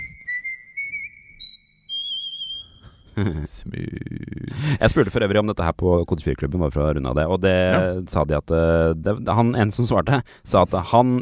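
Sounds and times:
person whistling a sustained wavering tune: 0.0 - 3.2
speech: 3.2 - 11.2.

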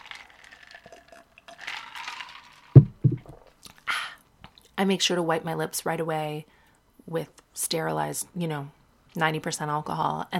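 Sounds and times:
person sipping a drink of vodka: 0.0 - 3.8
low knocks: 2.8 - 3.4
speech: 4.8 - 10.3.

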